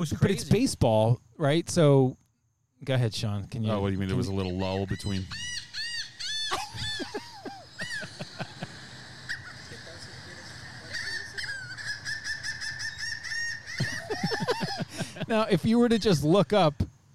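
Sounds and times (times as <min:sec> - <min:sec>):
speech: 0:00.0 - 0:02.2, 0:02.8 - 0:05.5, 0:15.3 - 0:16.9
faint noise: 0:00.0 - 0:17.1
seagull calls played from a phone: 0:04.1 - 0:08.3, 0:09.1 - 0:14.6
laughter: 0:06.3 - 0:15.7.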